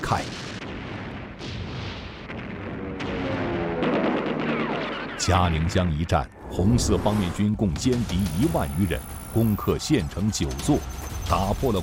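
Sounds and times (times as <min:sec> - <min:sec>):
gunfire shot into the air by soldiers on a pontoon bridge: 0:00.0 - 0:05.1
speech: 0:00.1 - 0:00.4, 0:05.2 - 0:11.8.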